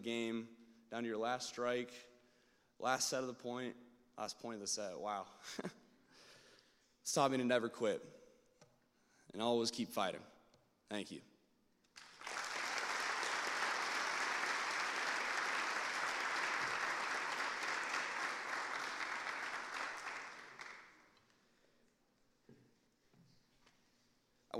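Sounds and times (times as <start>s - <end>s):
speech: 0.0s - 2.1s, 2.8s - 5.8s, 7.1s - 8.2s, 9.3s - 10.3s, 10.9s - 11.3s
sizeable audience clapping: 11.9s - 21.3s.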